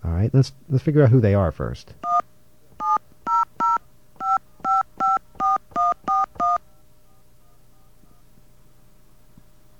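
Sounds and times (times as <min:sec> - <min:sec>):
faint hum: 0:00.0 - 0:09.7
speech: 0:00.2 - 0:02.1
telephone keypad DTMF dialing tones on a phone system: 0:02.8 - 0:06.6.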